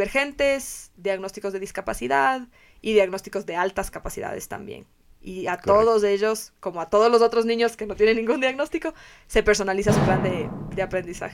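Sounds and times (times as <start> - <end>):
speech: 0.0 - 11.3
accidental knock on metal table with booming thud and metallic ring: 9.8 - 11.3.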